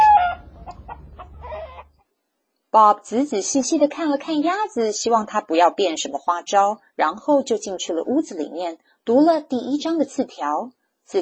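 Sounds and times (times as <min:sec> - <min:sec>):
hens clucking: 0:00.0 - 0:02.0
speech: 0:02.8 - 0:11.2.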